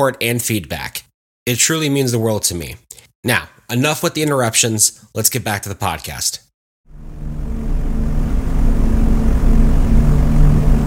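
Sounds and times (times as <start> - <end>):
speech: 0.0 - 6.5
B-17 bomber formation propeller engines droning in flight: 7.0 - 10.8.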